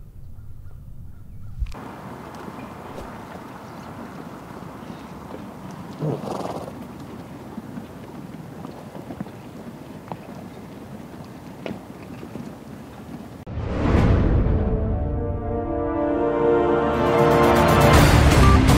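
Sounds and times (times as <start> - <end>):
rushing outdoor background: 0.0 - 18.7
donkey braying: 3.0 - 9.7.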